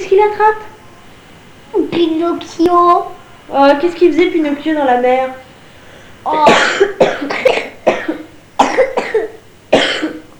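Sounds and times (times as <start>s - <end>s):
speech: 0.0s - 0.8s, 1.7s - 5.4s, 6.2s - 7.6s
person coughing harshly: 6.3s - 10.3s.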